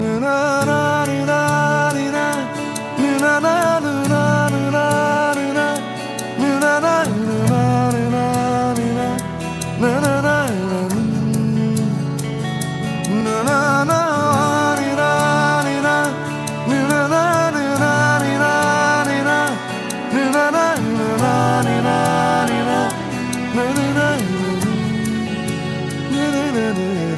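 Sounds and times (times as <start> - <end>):
soothing guitar ringtone: 0.0 - 27.1.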